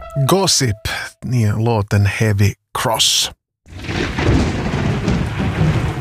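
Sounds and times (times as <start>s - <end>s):
speech: 0.3s - 4.5s
thunder rumbling: 3.7s - 5.9s.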